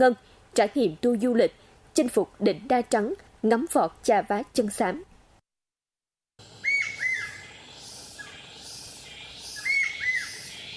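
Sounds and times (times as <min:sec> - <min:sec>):
speech: 0:00.0 - 0:05.1
soft steady hum of woodland ambience: 0:00.0 - 0:05.4, 0:06.4 - 0:10.7
forest birds calling from the treetops in whistled chirps: 0:06.4 - 0:10.7.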